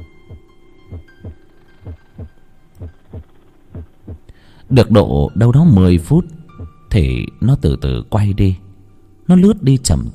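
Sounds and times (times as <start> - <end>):
heartbeats of two people pounding at night: 0.0 - 4.3
faint hum: 0.0 - 10.1
speech: 4.7 - 8.6, 9.3 - 10.1.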